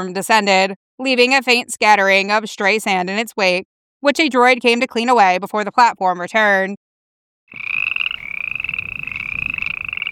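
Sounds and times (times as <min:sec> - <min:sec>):
speech: 0:00.0 - 0:06.8
frogs croaking in a continuous trill: 0:07.5 - 0:10.1.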